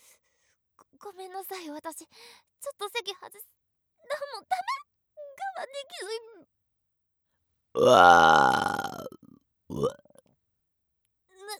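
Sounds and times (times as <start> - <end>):
speech: 1.0 - 4.9, 5.6 - 6.6, 7.7 - 10.0
woman burping loudly and wetly: 7.8 - 10.0.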